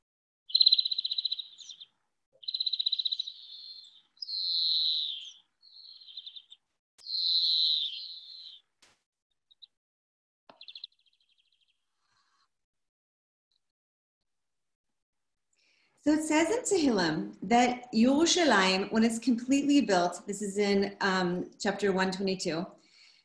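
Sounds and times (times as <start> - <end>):
European Greenfinch song of buzzy rattling trills and wheezy notes: 0.5 - 8.7, 10.5 - 12.4
speech: 16.0 - 22.8.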